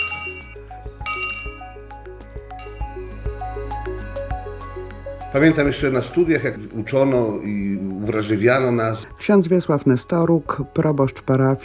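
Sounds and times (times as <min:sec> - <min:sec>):
old bell ringing: 0:00.0 - 0:03.3
speech: 0:05.3 - 0:11.6.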